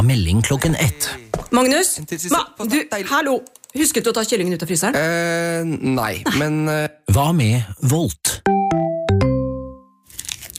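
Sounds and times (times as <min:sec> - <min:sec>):
speech: 0:00.0 - 0:08.5
crunchy chewing while eating shrimp: 0:10.0 - 0:10.5.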